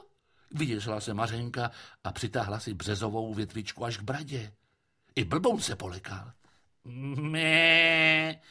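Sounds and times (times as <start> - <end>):
speech: 0.5 - 4.6, 5.2 - 8.4
goat bleating: 7.2 - 8.3.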